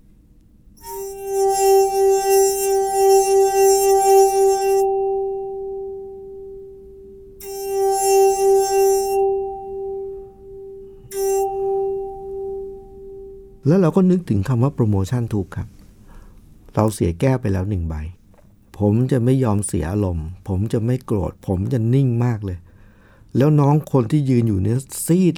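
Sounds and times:
cracked crystal glass ringing a G note: 0.8s - 13.6s
speech: 13.7s - 15.8s, 16.8s - 18.2s, 18.8s - 22.6s, 23.3s - 25.3s.

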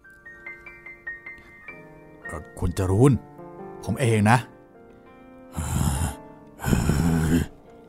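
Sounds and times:
speech: 2.3s - 4.5s
breathy groaning moans of a trembling monk: 5.6s - 7.6s.

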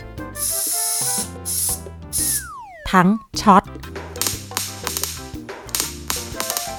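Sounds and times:
soft tonal music: 0.0s - 2.6s, 3.4s - 6.7s
insecticide aerosol spray hissing against mosquitoes: 0.4s - 2.5s
speech: 2.9s - 3.8s.

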